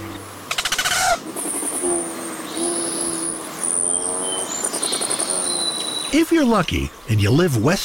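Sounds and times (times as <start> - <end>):
male Rufous hummingbird wing pulses in courtship display: 0.0 - 6.2
speech: 6.1 - 7.8.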